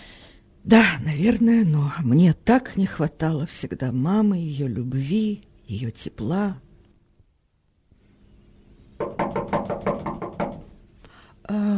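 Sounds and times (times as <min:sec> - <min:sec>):
speech: 0:00.6 - 0:06.7
knocking on a door: 0:09.0 - 0:10.7.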